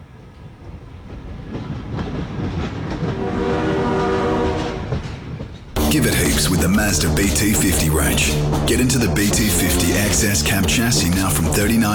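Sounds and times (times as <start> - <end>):
train rumbling past at level crossing: 0.0 - 11.9
sustained train horn blast: 3.1 - 5.0
speech: 5.9 - 11.9.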